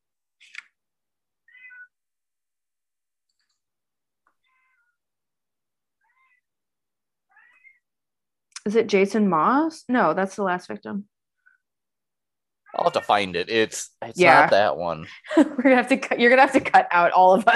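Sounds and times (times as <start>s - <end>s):
cat meowing: 1.5s - 1.9s, 6.0s - 6.5s, 7.3s - 7.8s, 12.7s - 13.3s
speech: 8.7s - 11.1s, 12.8s - 17.5s.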